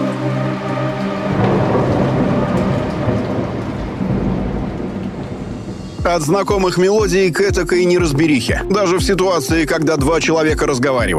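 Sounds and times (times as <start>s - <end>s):
heavy downpour of rain: 0.0s - 9.8s
deep rumbling thunder: 0.5s - 8.2s
speech: 6.1s - 11.1s.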